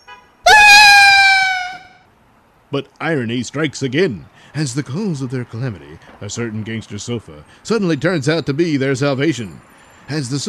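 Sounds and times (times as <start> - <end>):
piercing girlish shriek: 0.5 - 2.0
speech: 2.7 - 10.4.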